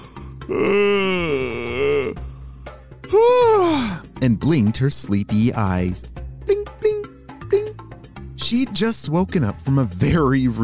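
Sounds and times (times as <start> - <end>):
person yawning with a voiced groan: 0.0 - 2.4, 3.1 - 4.0
speech: 0.5 - 0.9, 4.2 - 6.1, 8.5 - 10.6.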